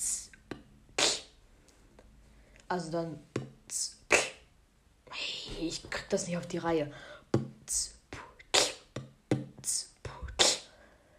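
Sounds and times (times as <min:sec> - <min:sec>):
mouth-made beatbox groove with kick, snare and hi-hat sounds: 0:00.0 - 0:01.3, 0:03.7 - 0:04.4, 0:07.6 - 0:10.7
speech: 0:02.7 - 0:03.9, 0:05.6 - 0:07.1, 0:07.7 - 0:07.9.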